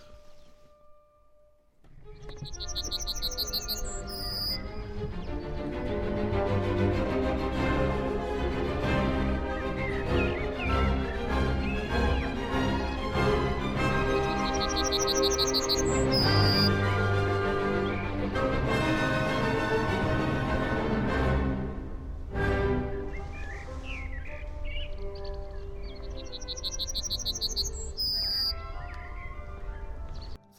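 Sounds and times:
high rapid bird chirping: 0.0 - 5.9, 9.3 - 18.6, 22.9 - 30.5
loud continuous orchestral music: 0.0 - 30.5.

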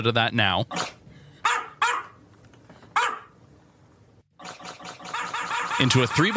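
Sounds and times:
speech: 0.0 - 1.0, 5.8 - 6.3
dog barking: 1.4 - 2.2, 3.0 - 3.3.

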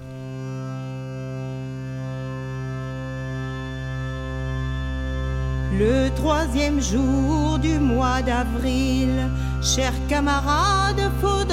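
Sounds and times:
buzzing hurdy-gurdy drone in a folk music intro: 0.0 - 11.5
speech: 5.7 - 11.5.

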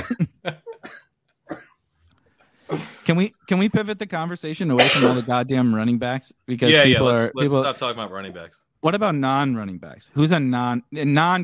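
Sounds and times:
person coughing after laughing: 0.0 - 1.8, 4.8 - 5.3
speech: 2.7 - 11.4.

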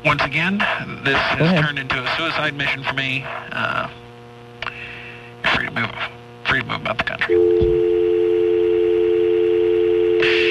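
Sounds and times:
speech: 0.0 - 4.0, 5.7 - 8.0
telephone dial tone: 7.4 - 10.5.

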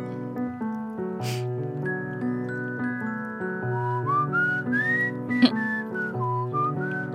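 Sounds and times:
steady piano chords: 0.0 - 7.1
person whistling a wavering, sliding melody: 3.5 - 7.1.

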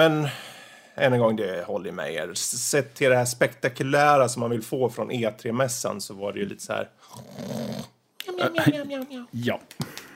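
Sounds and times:
speech: 0.0 - 0.4, 1.0 - 9.9
person imitating snoring: 7.1 - 8.0.

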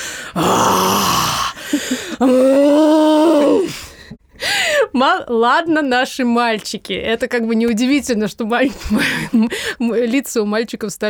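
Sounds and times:
speech: 0.4 - 1.1, 1.7 - 3.8, 5.0 - 11.0
woman imitating deep guttural groans of labor contractions: 0.4 - 3.9.

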